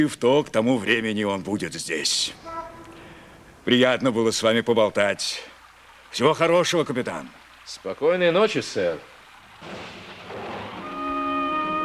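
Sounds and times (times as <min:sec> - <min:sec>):
speech: 0:00.0 - 0:02.7, 0:03.6 - 0:05.5, 0:06.1 - 0:10.0
steady rain hissing and pattering: 0:00.1 - 0:11.8
sustained musical tone: 0:10.8 - 0:11.8.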